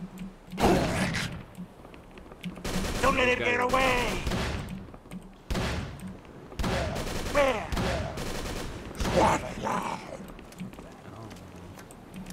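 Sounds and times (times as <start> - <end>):
gunfire in a shooter video game: 2.6 - 4.9, 5.5 - 9.7
speech: 3.1 - 4.4, 7.4 - 7.7.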